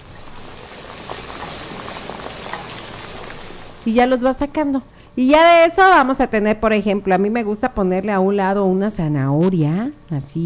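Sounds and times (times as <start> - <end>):
food frying in hot oil in a pan: 0.0 - 4.6
speech: 3.8 - 10.4.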